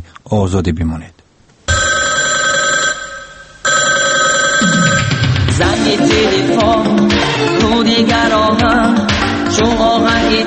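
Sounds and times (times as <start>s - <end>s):
speech: 0.3s - 1.2s, 5.6s - 10.4s
telephone bell ringing loudly: 1.7s - 5.8s
song with a pounding beat and bright synths: 4.6s - 7.8s.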